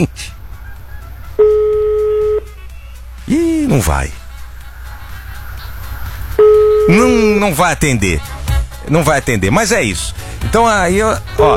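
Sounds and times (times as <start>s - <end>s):
speech: 0.0s - 0.4s, 3.3s - 4.2s, 6.9s - 11.5s
ringback tone through a studio phone hybrid: 1.4s - 2.6s, 6.4s - 7.2s.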